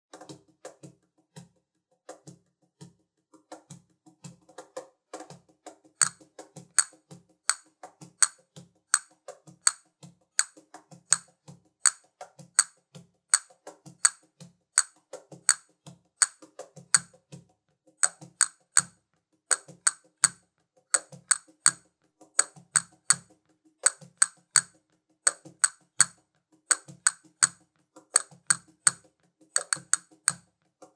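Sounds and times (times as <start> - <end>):
castanet: 5.2 - 17.2, 18.0 - 30.9.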